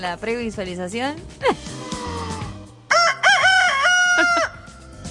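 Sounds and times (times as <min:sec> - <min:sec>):
speech: 0:00.0 - 0:02.1
rooster crowing through a megaphone: 0:02.9 - 0:04.6.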